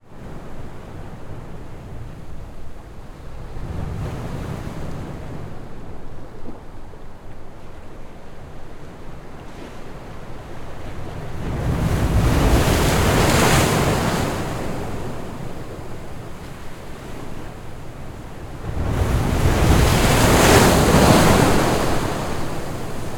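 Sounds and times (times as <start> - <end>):
huge waves crashing on the Black Sea: 10.8 - 23.1.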